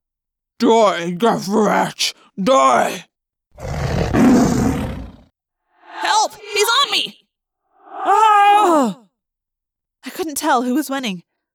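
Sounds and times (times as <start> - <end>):
speech: 0.6 - 3.7, 10.2 - 11.3
creatures roaring and snarling in battle: 3.6 - 5.2, 7.8 - 9.0.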